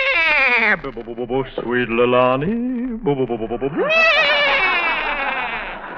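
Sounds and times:
voice imitating a horse whinnying: 0.0s - 1.1s, 3.5s - 5.8s
speech: 0.7s - 4.4s
laughter: 3.0s - 5.9s.

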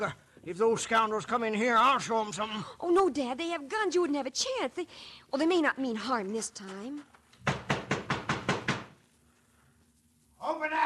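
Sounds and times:
speech: 0.0s - 7.2s, 10.4s - 10.8s
heavy blows pounding on a wooden door: 7.4s - 9.0s.

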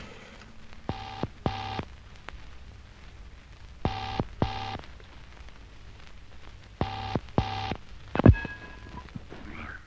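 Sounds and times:
low hum: 0.7s - 2.3s, 6.7s - 9.8s
bright steady telephone tones: 0.9s - 1.9s, 3.9s - 4.8s, 6.8s - 9.1s.

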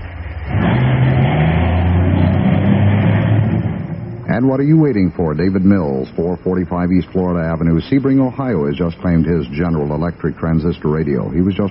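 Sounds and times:
car engine revving and driving off: 0.0s - 4.5s
speech: 4.4s - 11.6s.

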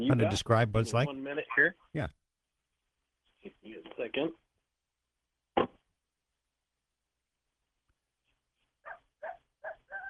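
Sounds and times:
speech: 0.0s - 2.2s, 3.4s - 4.4s
coyotes yipping and yelping outdoors: 8.8s - 10.0s.

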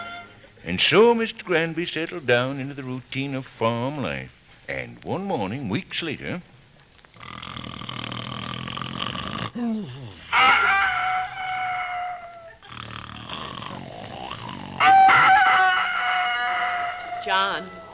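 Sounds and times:
speech: 0.7s - 6.5s
deep snoring: 7.1s - 10.2s, 12.6s - 14.8s
rooster crowing at dawn: 10.3s - 12.5s, 14.8s - 17.9s.

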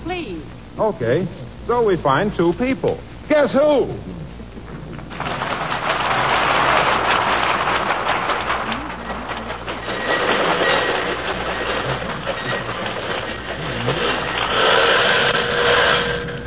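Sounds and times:
speech: 0.1s - 4.2s
rhythmic clatter of train wheels: 4.6s - 16.4s
train pulling into the station at Racine, Wisconsin: 5.1s - 16.4s
train brakes hissing and squealing: 9.8s - 16.4s.

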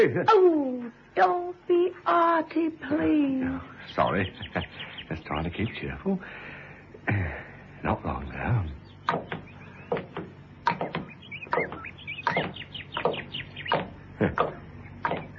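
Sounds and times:
speech: 0.0s - 0.6s, 1.2s - 6.5s, 7.1s - 9.4s
birds chirping and singing in a dawn chorus: 2.4s - 15.3s.

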